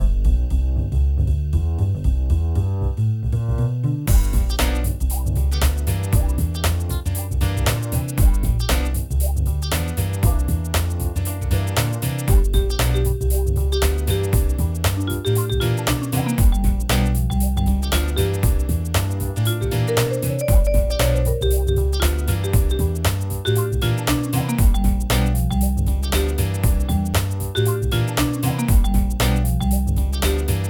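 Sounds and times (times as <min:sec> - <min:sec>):
upbeat jazz: 0:00.0 - 0:30.6
orchestrated jingles: 0:12.6 - 0:30.6.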